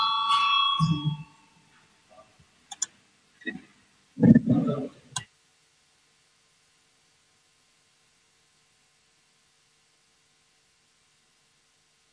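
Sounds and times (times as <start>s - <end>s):
bell rung to call a vote of deputies: 0.0s - 1.5s
clicks: 2.7s - 3.6s
brief low voices: 4.2s - 5.2s.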